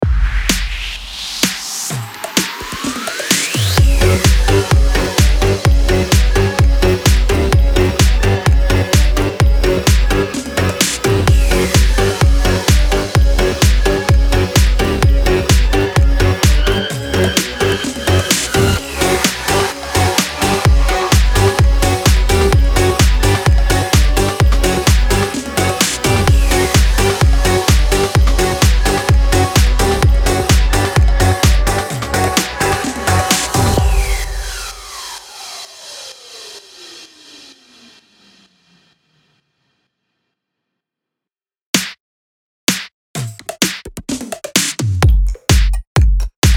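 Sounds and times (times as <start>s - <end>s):
Halloween electronic dance music bed in F minor at 128 BPM: 0.0s - 39.2s, 43.6s - 46.5s.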